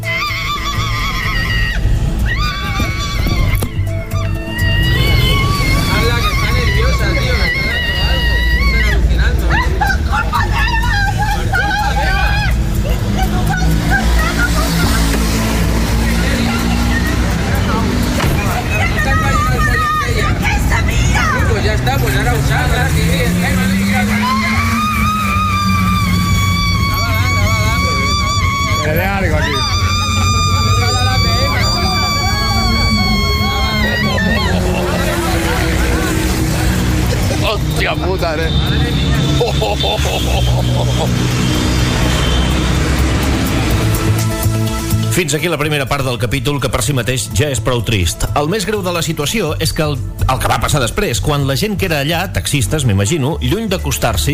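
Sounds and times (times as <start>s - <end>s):
woman screaming in distress inside a car during an anxiety attack: 0.0s - 15.2s, 18.6s - 21.5s, 23.8s - 36.5s
crowd murmuring: 0.0s - 45.8s
constant din of traffic engines: 0.0s - 54.3s
laughter: 0.3s - 43.9s
speech: 45.3s - 54.3s.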